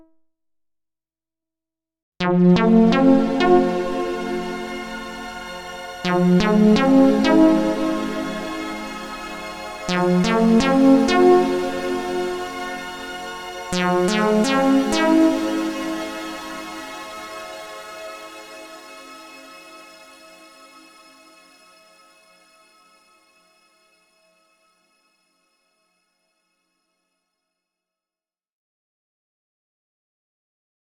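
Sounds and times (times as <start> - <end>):
analog synth: 2.3 - 24.8.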